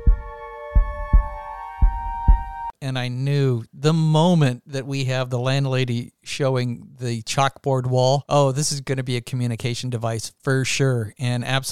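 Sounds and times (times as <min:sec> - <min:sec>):
slow heartbeat with deep thumps: 0:00.0 - 0:02.7
steady tonal hum: 0:00.0 - 0:02.7
speech: 0:02.8 - 0:11.7.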